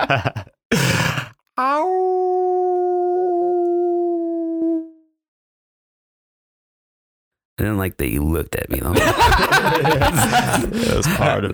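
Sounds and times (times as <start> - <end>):
speech: 0.1 - 0.4, 7.6 - 11.5
person imitating a howl: 1.6 - 5.1
laughter: 8.8 - 11.5.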